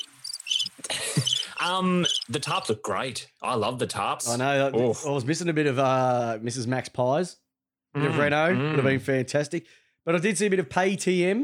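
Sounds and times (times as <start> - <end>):
crickets chirping sound effect: 0.0 - 2.3
speech: 1.6 - 11.4.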